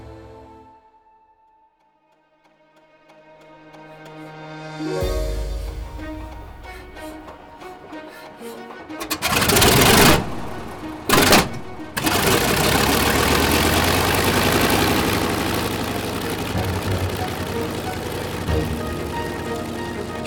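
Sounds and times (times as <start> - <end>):
aircraft engine cranking, catching and revving to a roar: 8.9 - 20.2.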